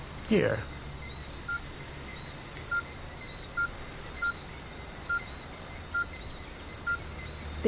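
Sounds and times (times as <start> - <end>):
quiet hiss: 0.0 - 7.6
speech: 0.3 - 0.8
phone keypad beeps: 2.7 - 3.0, 3.6 - 4.4, 5.9 - 6.2, 6.8 - 7.1.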